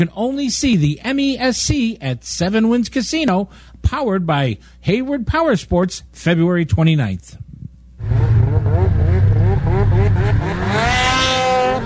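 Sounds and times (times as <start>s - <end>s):
speech: 0.0s - 7.4s
snowmobiles racing at a winter event in Hayward, Wisconsin: 8.0s - 11.8s.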